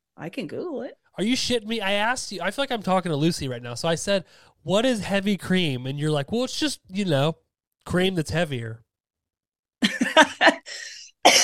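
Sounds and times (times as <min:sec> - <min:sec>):
speech: 0:00.2 - 0:08.8
raspy wheezing breath: 0:10.6 - 0:11.2
person coughing: 0:11.2 - 0:11.4.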